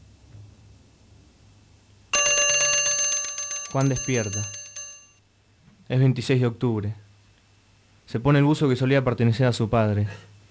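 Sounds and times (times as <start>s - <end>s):
alarm bell ringing as a radio drama sound effect: 2.2s - 5.2s
speech: 3.7s - 4.6s, 5.9s - 7.0s, 8.1s - 10.3s.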